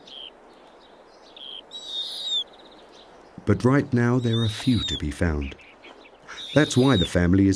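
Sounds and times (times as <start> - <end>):
owl calls: 0.0 - 0.4, 1.3 - 3.2, 4.2 - 7.2
speech: 3.5 - 5.6, 6.5 - 7.5.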